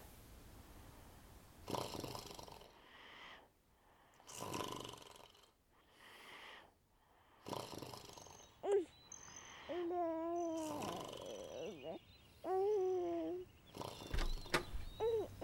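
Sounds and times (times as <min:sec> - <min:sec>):
raspy snoring: 0:01.6 - 0:02.8, 0:04.2 - 0:05.6, 0:07.4 - 0:08.9, 0:09.7 - 0:15.4.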